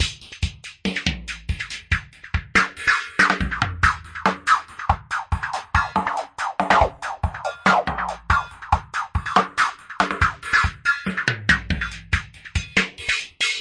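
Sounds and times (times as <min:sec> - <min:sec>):
filtered drum loop at 141: 0:00.0 - 0:13.5.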